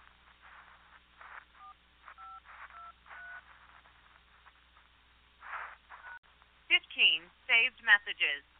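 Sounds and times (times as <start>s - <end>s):
narrow hissy telephone line: 0.0s - 4.6s
bursts of telephone line noise: 0.0s - 8.5s
touch-tone keypad beeps entering a passcode into a voicemail system: 1.6s - 3.4s
speech: 7.5s - 8.5s.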